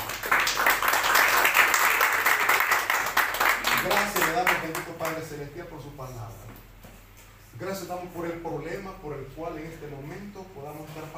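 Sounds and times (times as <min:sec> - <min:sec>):
room full of people clapping steadily: 0:00.0 - 0:04.8
speech: 0:04.0 - 0:06.7, 0:07.6 - 0:11.1.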